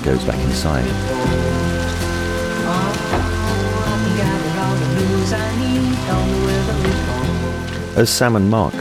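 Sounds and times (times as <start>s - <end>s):
speech: 0.0s - 1.7s, 8.0s - 8.7s
heavy rain pouring onto hard surfaces: 0.0s - 8.4s
sustained musical tones: 0.0s - 8.7s.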